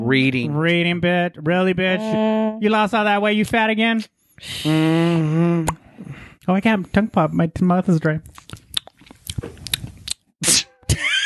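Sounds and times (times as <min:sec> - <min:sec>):
speech: 0:00.1 - 0:08.6
wet chewing on a chewy Starburst candy: 0:08.2 - 0:10.3.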